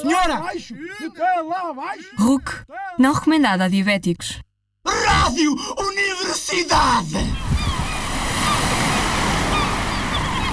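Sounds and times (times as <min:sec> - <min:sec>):
speech: 0:00.0 - 0:07.5
ocean waves breaking on a beach: 0:07.2 - 0:10.5.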